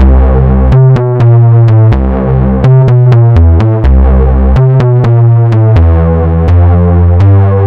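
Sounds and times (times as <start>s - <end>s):
big beat music: 0.0s - 7.6s.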